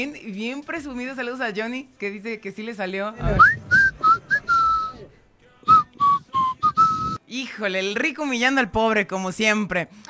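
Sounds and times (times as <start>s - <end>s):
speech: 0.0s - 3.7s, 7.3s - 10.0s
person whistling a short tune: 3.3s - 7.2s.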